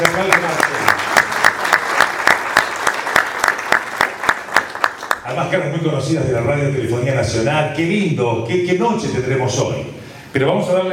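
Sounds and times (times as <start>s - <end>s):
audience applause at a national communications awards ceremony: 0.0s - 5.2s
speech: 5.5s - 10.9s.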